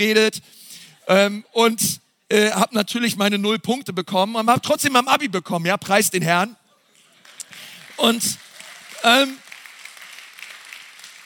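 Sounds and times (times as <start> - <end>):
speech: 0.0 - 6.6, 8.0 - 8.4, 9.0 - 9.4
steady audience applause of many hands clapping: 7.2 - 11.2.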